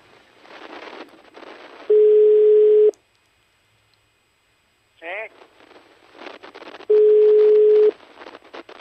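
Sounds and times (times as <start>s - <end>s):
telephone ringing tone on a call to a number abroad: 1.9s - 2.9s, 6.9s - 8.0s.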